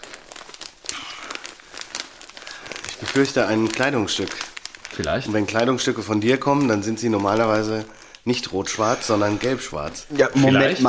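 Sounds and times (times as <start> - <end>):
wrapping paper crinkling as a soft gift parcel is opened: 0.0 - 10.8
speech: 3.2 - 10.8.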